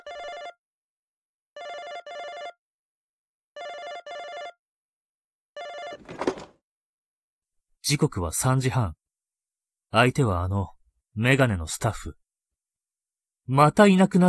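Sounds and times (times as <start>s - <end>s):
telephone ringing in short electronic double bursts: 0.0s - 0.6s, 1.6s - 2.6s, 3.6s - 4.6s, 5.6s - 6.4s
clattering noise: 6.0s - 6.6s
speech: 7.9s - 9.0s, 9.9s - 12.2s, 13.5s - 14.2s.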